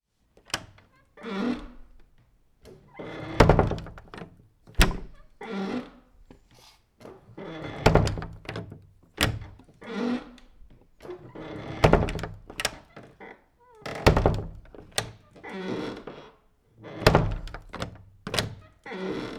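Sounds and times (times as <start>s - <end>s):
door sounds: 2.7s - 5.4s, 7.5s - 9.6s, 10.4s - 13.2s, 13.9s - 15.2s, 16.9s - 19.3s.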